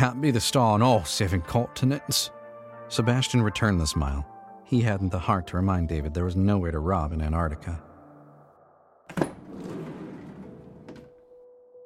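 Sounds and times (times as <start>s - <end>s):
speech: 0.0s - 7.9s, 9.1s - 9.3s
heavy van side door sliding open: 9.1s - 11.2s.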